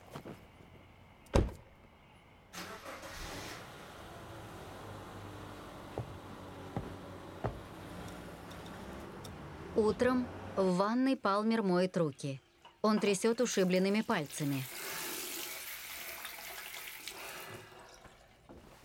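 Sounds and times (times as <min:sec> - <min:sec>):
car door thump: 0:01.3 - 0:01.6, 0:06.0 - 0:08.0
car engine humming: 0:02.6 - 0:10.8
speech: 0:09.8 - 0:14.8.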